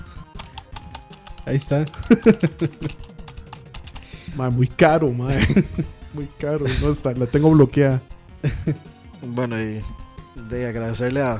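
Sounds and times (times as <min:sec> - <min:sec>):
computer mouse clicks and taps: 0:00.4 - 0:02.1, 0:02.8 - 0:04.1
speech: 0:01.4 - 0:03.1, 0:04.4 - 0:11.3
laughter: 0:01.8 - 0:03.2, 0:05.2 - 0:06.0, 0:08.4 - 0:08.9.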